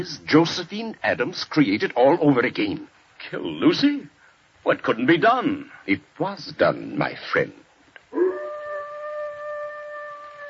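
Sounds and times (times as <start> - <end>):
speech: 0.0 - 7.6
dog howling: 8.1 - 10.4.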